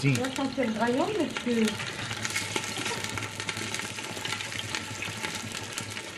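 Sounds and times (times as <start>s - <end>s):
mustard rabbit frying in a pan in a restaurant kitchen: 0.0s - 6.1s.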